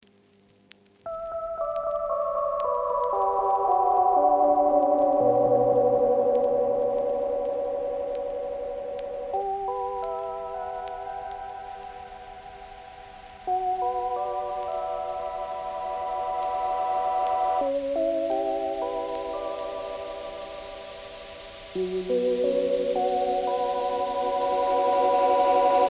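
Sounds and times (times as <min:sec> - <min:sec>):
music interlude: 0:01.1 - 0:25.8.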